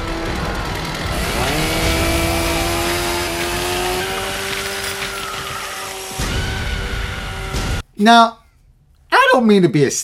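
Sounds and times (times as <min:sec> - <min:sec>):
chainsaw revving: 0:00.0 - 0:07.8
speech: 0:08.0 - 0:08.4, 0:09.3 - 0:10.0.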